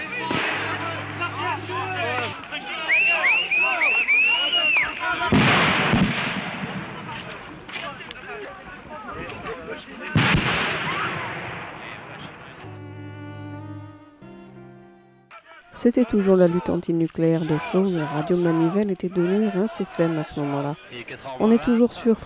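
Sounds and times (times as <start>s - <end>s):
gunfire or explosive shots at an anti-nuclear protest: 0.0s - 1.2s, 5.2s - 8.1s, 9.4s - 12.6s
laughter: 0.0s - 6.0s, 6.8s - 14.6s, 15.8s - 22.2s
loud broad blasts: 0.0s - 8.1s, 10.0s - 13.7s
noisy crowd of demonstrators shouting: 0.0s - 14.6s, 15.3s - 22.2s
speech: 15.8s - 22.2s.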